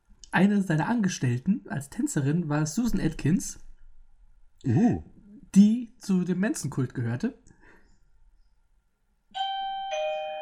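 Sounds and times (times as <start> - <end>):
speech: 0.4 - 3.6, 4.6 - 7.4
doorbell two-note ding-dong chime: 9.4 - 10.4.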